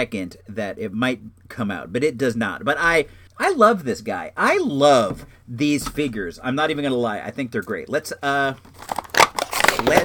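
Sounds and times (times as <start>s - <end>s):
speech: 0.0s - 9.0s, 9.8s - 10.0s
stiff cardboard rustling: 8.6s - 10.0s.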